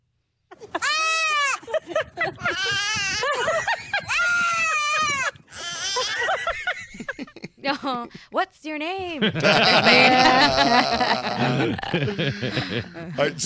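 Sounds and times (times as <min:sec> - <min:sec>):
laughter: 0:00.5 - 0:08.2, 0:09.1 - 0:13.4
human baby crying: 0:00.8 - 0:01.7, 0:02.3 - 0:06.6, 0:10.2 - 0:11.8
baby goat bleating: 0:02.4 - 0:03.2, 0:04.2 - 0:06.2
speech: 0:07.8 - 0:13.4.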